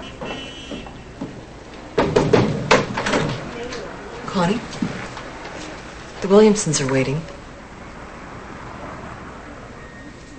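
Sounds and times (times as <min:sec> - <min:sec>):
soft knocks on a door: 0:02.0 - 0:03.5
speech: 0:04.4 - 0:05.0, 0:06.2 - 0:07.3.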